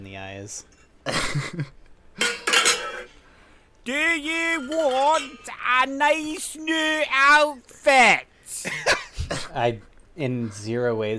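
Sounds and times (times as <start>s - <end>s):
speech: 0.2s - 2.4s, 3.9s - 11.1s
pots and pans clattering and clanking: 2.2s - 3.2s.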